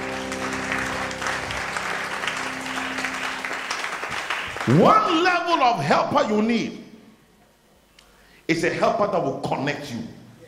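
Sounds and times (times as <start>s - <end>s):
audience clapping in a large room: 0.0s - 5.5s
speech: 4.7s - 6.8s, 8.5s - 10.2s.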